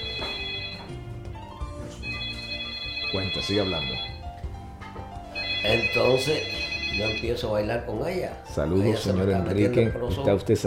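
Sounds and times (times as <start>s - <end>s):
telephone ringing: 0.0s - 1.4s, 2.0s - 4.5s, 5.3s - 7.9s
speech: 3.1s - 4.1s, 5.6s - 10.6s.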